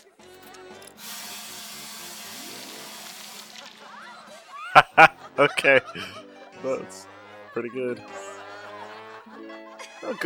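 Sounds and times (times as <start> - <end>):
liquid spraying: 1.0 - 4.4
laughter: 2.3 - 10.2
speech: 4.8 - 8.2, 10.0 - 10.2.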